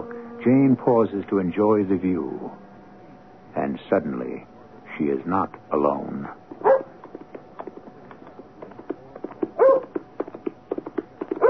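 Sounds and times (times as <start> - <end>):
speech: 0.4 - 2.6, 3.6 - 6.4
horse galloping along a road with hard ground: 6.4 - 11.4
dog barking and yelping: 6.6 - 6.9, 9.6 - 9.9.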